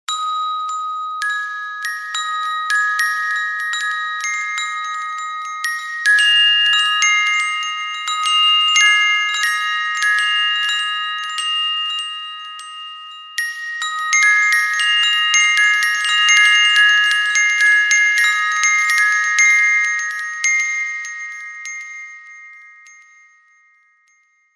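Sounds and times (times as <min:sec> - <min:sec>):
wind chime: 0:00.0 - 0:24.5.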